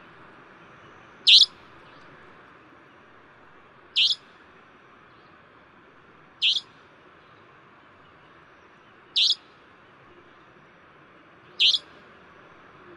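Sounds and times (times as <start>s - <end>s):
savanna nightjar calling: 1.2s - 1.6s, 4.0s - 4.3s, 6.4s - 6.7s, 9.2s - 9.5s, 11.6s - 12.0s.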